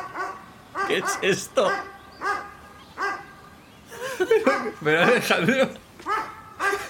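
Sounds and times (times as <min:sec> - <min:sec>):
dog barking: 0:00.0 - 0:03.4, 0:04.3 - 0:04.8, 0:06.0 - 0:06.8
speech: 0:00.9 - 0:01.9, 0:04.2 - 0:05.8
laughter: 0:03.9 - 0:05.8.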